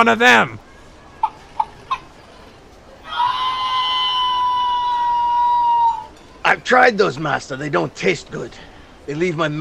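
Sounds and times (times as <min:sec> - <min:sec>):
speech: 0:00.0 - 0:00.6, 0:06.6 - 0:09.5
chickens clucking: 0:01.1 - 0:02.2
chickens squawking chorus: 0:01.2 - 0:02.2, 0:03.0 - 0:06.1.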